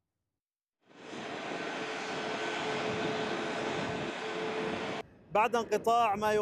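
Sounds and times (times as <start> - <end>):
passenger plane jet engines roaring on takeoff: 0.9 - 5.8
speech: 5.4 - 6.4.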